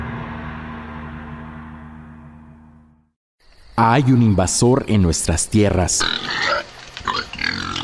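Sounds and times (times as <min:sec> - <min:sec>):
speech: 0:03.8 - 0:06.7
wild pigs grunting: 0:05.9 - 0:07.8.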